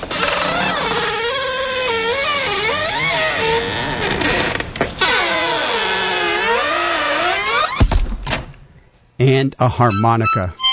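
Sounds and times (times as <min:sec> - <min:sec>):
very squeaky door creaking: 0:00.0 - 0:07.9
speech: 0:09.4 - 0:10.6.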